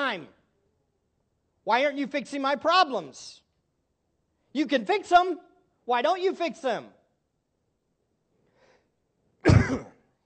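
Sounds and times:
speech: 0:00.1 - 0:00.4, 0:01.6 - 0:03.4, 0:04.5 - 0:07.0, 0:09.7 - 0:09.9
person coughing: 0:09.4 - 0:10.2.

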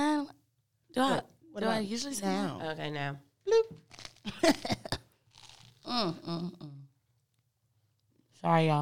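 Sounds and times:
speech: 0:01.0 - 0:04.8, 0:05.9 - 0:06.8, 0:08.4 - 0:08.8
crunching and chewing food into a microphone: 0:03.8 - 0:04.6, 0:05.3 - 0:05.9.

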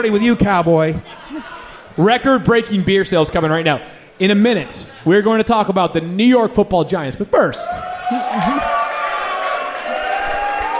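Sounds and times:
speech: 0:00.0 - 0:01.2, 0:02.0 - 0:08.7
live crowd cheering and whooping: 0:07.6 - 0:10.7
scattered clapping: 0:08.3 - 0:10.7.

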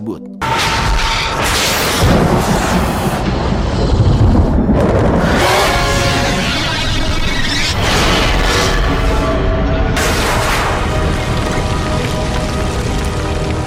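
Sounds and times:
speech: 0:00.1 - 0:00.7
loud sustained explosion with crackling and roaring debris: 0:01.2 - 0:13.5.

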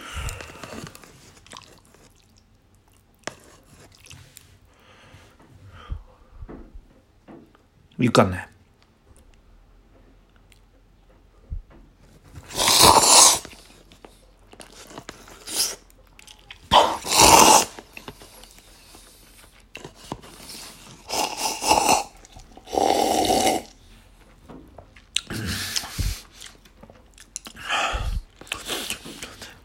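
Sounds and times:
crunchy chewing of food into the microphone: 0:00.1 - 0:04.4, 0:12.3 - 0:23.8, 0:24.8 - 0:27.7, 0:28.3 - 0:29.6
speech: 0:08.0 - 0:08.5.

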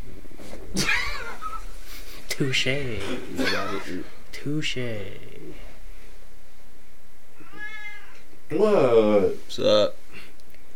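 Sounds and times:
speech: 0:02.4 - 0:05.7, 0:08.5 - 0:10.0
cat meowing: 0:07.4 - 0:08.3.

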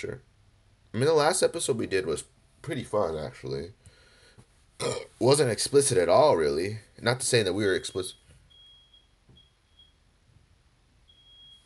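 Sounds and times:
speech: 0:00.0 - 0:00.3, 0:00.9 - 0:03.8, 0:04.8 - 0:08.2
faint high-pitched smoke or carbon monoxide alarm beeping: 0:07.6 - 0:10.0, 0:11.1 - 0:11.6.

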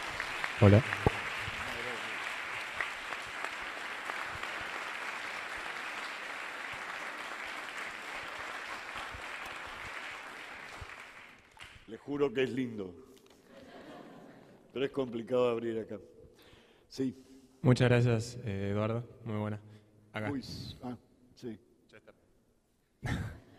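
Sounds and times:
large audience applause: 0:00.0 - 0:11.8
speech: 0:00.6 - 0:01.1, 0:12.2 - 0:13.1, 0:14.8 - 0:16.1, 0:16.9 - 0:22.0
laughter: 0:13.5 - 0:14.7.

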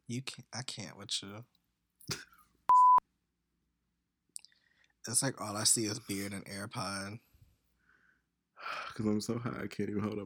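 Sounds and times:
speech: 0:00.1 - 0:02.3, 0:05.0 - 0:07.3, 0:08.6 - 0:10.2
censor bleep: 0:02.7 - 0:03.0.

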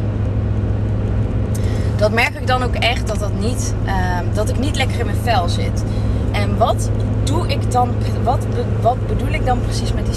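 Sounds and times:
road traffic rumble: 0:00.0 - 0:10.1
vehicle passing with engine drone: 0:00.0 - 0:10.1
speech: 0:02.0 - 0:10.1.

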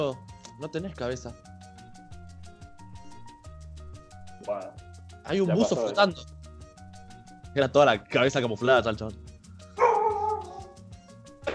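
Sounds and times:
speech: 0:00.0 - 0:01.5, 0:04.5 - 0:06.3, 0:07.6 - 0:09.2
faint steady rhythmic beat: 0:00.0 - 0:11.5
small dog yelping bark: 0:09.8 - 0:10.8.

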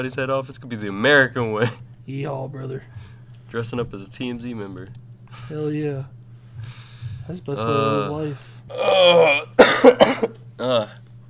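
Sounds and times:
speech: 0:00.0 - 0:11.0
harsh coughs: 0:09.3 - 0:10.4.

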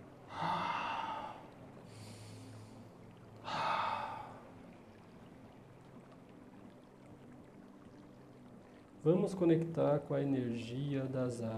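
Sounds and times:
slow deep breathing in through the nose and out through the mouth: 0:00.3 - 0:02.8
speech: 0:09.0 - 0:11.5.

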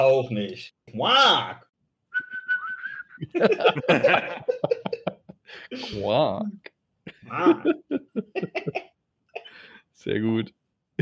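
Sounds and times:
speech: 0:00.0 - 0:01.7, 0:03.2 - 0:08.9, 0:10.0 - 0:11.0
person whistling a single note: 0:02.1 - 0:03.2
loud breathy laughter: 0:02.8 - 0:05.9, 0:07.1 - 0:09.6.

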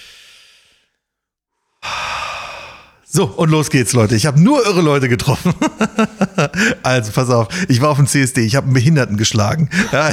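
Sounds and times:
deep inhale: 0:00.0 - 0:01.0, 0:01.6 - 0:03.1
speech: 0:03.1 - 0:10.1
laughter: 0:05.2 - 0:10.1.

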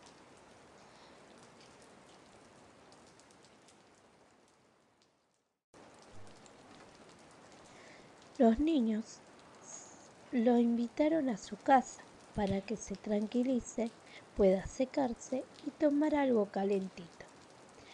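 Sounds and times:
steady rain pattering on a hard surface: 0:00.0 - 0:17.9
speech: 0:08.4 - 0:09.3, 0:10.3 - 0:17.2.

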